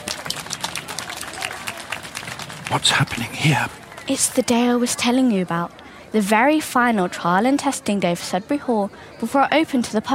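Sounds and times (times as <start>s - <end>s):
small group applauding: 0.0s - 4.2s
speech: 2.7s - 10.1s.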